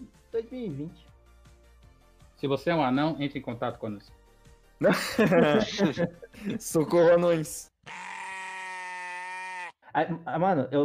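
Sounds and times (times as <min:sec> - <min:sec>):
speech: 0:00.5 - 0:01.1, 0:02.4 - 0:04.2, 0:04.8 - 0:08.0, 0:10.0 - 0:10.8
laughter: 0:04.8 - 0:06.7
goat bleat sound effect: 0:07.8 - 0:09.8.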